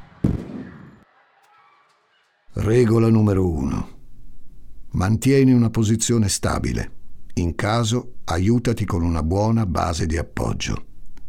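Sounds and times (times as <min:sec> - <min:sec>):
loud burst of firecracker-like bangs: 0:00.0 - 0:01.0
speech: 0:02.6 - 0:04.0, 0:04.9 - 0:10.9.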